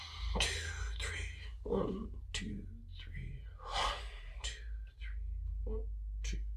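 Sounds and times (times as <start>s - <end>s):
slow deep meditative breathing: 0.0s - 1.7s, 3.4s - 5.6s
low hum: 0.0s - 6.5s
speech: 0.4s - 0.7s, 1.6s - 3.8s.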